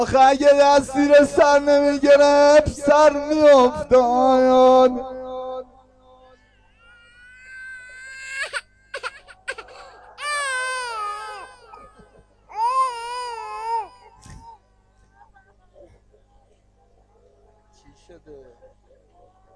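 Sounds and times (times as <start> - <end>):
speech: 0.0 - 5.2
infant crying in high-pitched bursts: 6.3 - 14.6.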